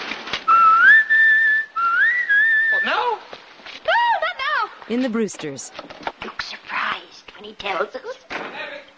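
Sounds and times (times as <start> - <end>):
person whistling long signal notes: 0.5 - 3.0
speech: 4.9 - 6.1, 7.4 - 8.6.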